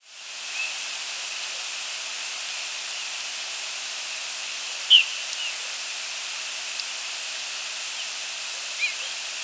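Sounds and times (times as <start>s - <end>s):
steady loud hiss: 0.0s - 9.4s
rose-breasted grosbeak giving a sharp squeaky call note: 4.9s - 5.6s.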